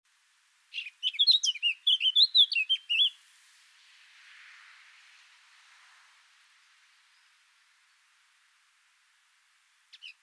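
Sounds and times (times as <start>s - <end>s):
Eurasian blackcap Sylvia atricapilla singing: 0.7s - 3.2s, 9.9s - 10.2s.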